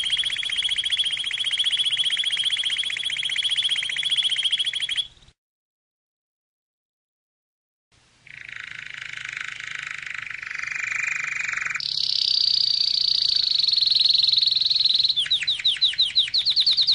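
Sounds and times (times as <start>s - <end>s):
canary singing: 0.0s - 5.3s, 8.3s - 16.9s.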